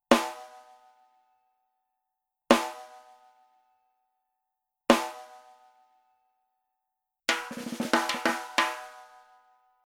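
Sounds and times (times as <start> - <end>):
snare drum rim shot: 7.3 - 9.2.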